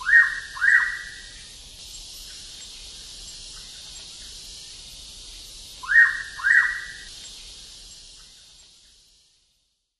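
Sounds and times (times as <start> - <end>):
hooded pitta Pitta sordida whistled call: 0.0 - 1.3, 5.8 - 7.1.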